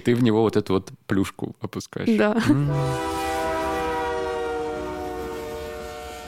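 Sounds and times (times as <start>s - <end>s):
speech: 0.0s - 3.2s
train horn: 2.6s - 6.2s.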